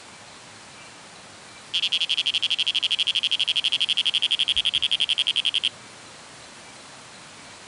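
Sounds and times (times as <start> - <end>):
Oreophryne matawan frog calling: 1.7 - 5.7.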